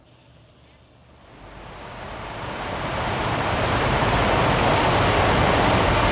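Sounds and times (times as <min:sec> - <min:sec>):
Niagara Falls waterfall roaring: 0:01.4 - 0:06.0.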